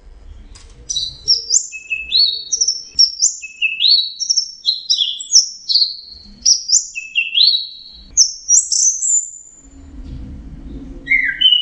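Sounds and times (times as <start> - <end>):
orange-headed thrush singing: 0.9 - 9.6, 11.1 - 11.6.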